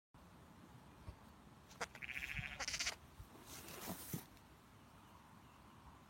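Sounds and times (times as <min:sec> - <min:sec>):
young lamb bleating: 0:01.7 - 0:03.0
rustling: 0:03.3 - 0:04.5.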